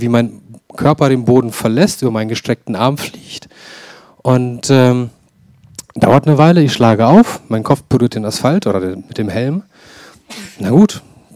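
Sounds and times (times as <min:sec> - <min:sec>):
speech: 0:00.0 - 0:05.2, 0:06.0 - 0:11.3
person sneezing: 0:10.1 - 0:10.7.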